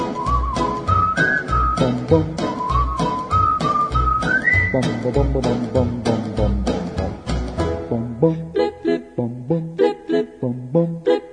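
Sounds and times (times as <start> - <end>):
person whistling a bright melody: 0.0 - 6.8
bouncy musical backing with a thumping beat and bass: 0.0 - 11.3
speech: 1.8 - 2.4, 4.7 - 6.8, 7.9 - 8.5.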